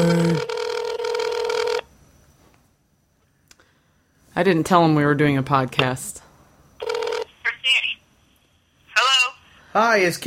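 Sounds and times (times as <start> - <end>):
buzzy electronic phone ring over a speakerphone: 0.2 - 1.9, 6.8 - 7.4
speech: 4.4 - 6.2, 9.8 - 10.2.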